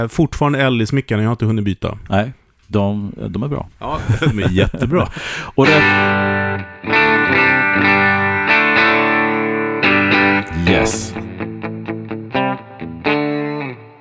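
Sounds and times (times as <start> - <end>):
speech: 0.0 - 7.9, 10.6 - 11.3
laughter: 3.8 - 6.2
clean electric guitar chords through an amplifier: 5.6 - 13.9.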